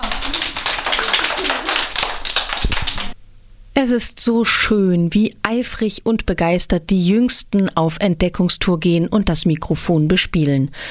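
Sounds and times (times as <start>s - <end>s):
group of children clapping hands: 0.0s - 3.2s
speech: 3.8s - 10.8s.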